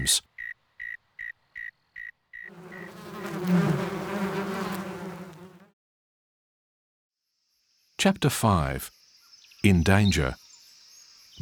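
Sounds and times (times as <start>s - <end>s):
speech: 0.0s - 0.3s, 8.0s - 9.0s, 9.6s - 10.4s
insects buzzing as a warning sound: 0.0s - 5.7s, 8.9s - 11.4s.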